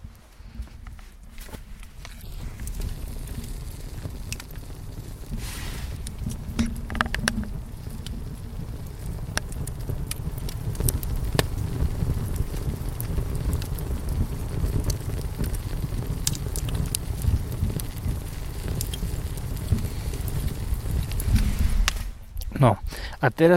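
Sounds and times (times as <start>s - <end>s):
campfire crackling: 0.0s - 23.5s
campfire pops and snaps: 0.0s - 23.5s
steady low rumble: 1.7s - 14.4s, 19.6s - 23.1s
speech: 22.6s - 23.5s.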